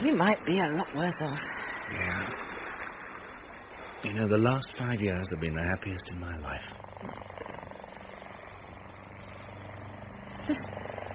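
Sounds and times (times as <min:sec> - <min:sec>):
helicopter engine hum: 0:00.0 - 0:11.1
speech: 0:00.2 - 0:02.5, 0:04.0 - 0:07.6, 0:10.4 - 0:10.8
helicopter rotor thumping overhead: 0:06.7 - 0:11.1.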